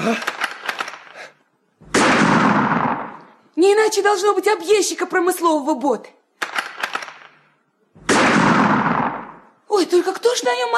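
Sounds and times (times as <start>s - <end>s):
speech: 0.0s - 0.4s, 3.6s - 6.2s, 9.8s - 10.7s
sharp gunshots fired as a signal: 0.2s - 1.2s, 1.8s - 3.2s, 6.4s - 7.4s, 8.0s - 9.5s.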